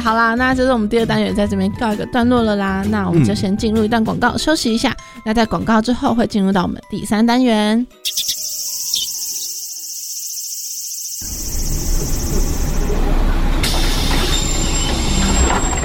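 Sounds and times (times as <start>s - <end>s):
speech: 0.0s - 8.3s
high steady whine: 11.2s - 13.4s
city bus on route 756 pulling into a stop: 11.3s - 15.8s.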